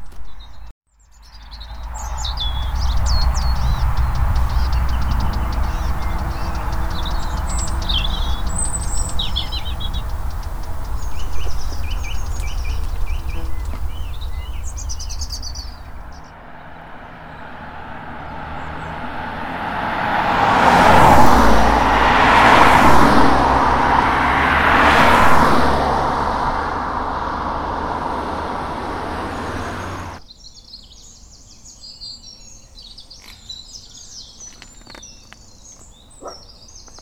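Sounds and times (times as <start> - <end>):
song thrush singing: 0.2 - 16.3
louder vehicle passing on a busy A-road: 1.3 - 30.2
steady road traffic on a busy A-road: 1.5 - 30.2.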